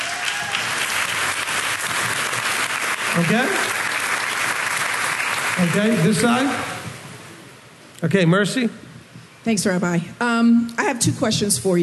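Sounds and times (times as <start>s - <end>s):
audience clapping: 0.0s - 6.8s
speech: 3.2s - 3.8s, 5.6s - 6.8s, 8.0s - 8.8s, 9.4s - 11.8s.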